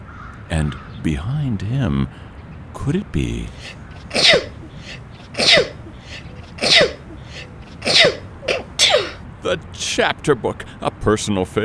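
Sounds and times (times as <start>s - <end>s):
speech: 0.5s - 4.5s, 9.4s - 11.6s
person sneezing: 3.6s - 9.2s.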